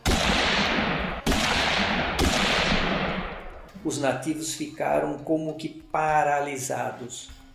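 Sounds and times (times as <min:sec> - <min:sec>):
gunshots fired into the air: 0:00.0 - 0:03.7
speech: 0:03.8 - 0:07.4.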